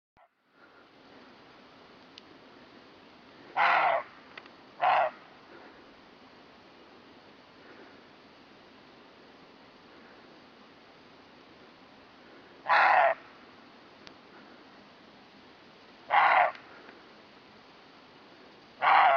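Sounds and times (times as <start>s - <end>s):
quiet hiss: 0.2s - 19.1s
roe deer giving gruff rasping barks: 3.6s - 4.1s, 4.8s - 5.2s, 12.6s - 13.2s, 16.1s - 16.6s, 18.8s - 19.1s.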